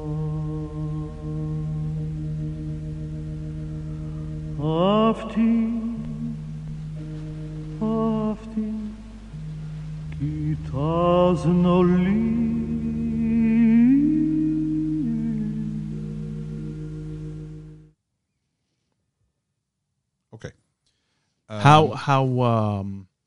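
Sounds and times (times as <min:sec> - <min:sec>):
old phonograph recording from the 1950s or early 1960s: 0:00.0 - 0:17.9
wavering sung melody on a phonograph recording: 0:00.0 - 0:17.9
crackly static: 0:00.0 - 0:18.0
speech: 0:04.6 - 0:05.8, 0:21.7 - 0:23.0.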